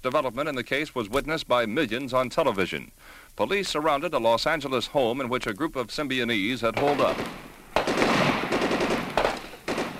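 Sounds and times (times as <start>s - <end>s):
speech: 0.0s - 7.5s
gunfire from a police gun battle at a house: 6.8s - 9.9s.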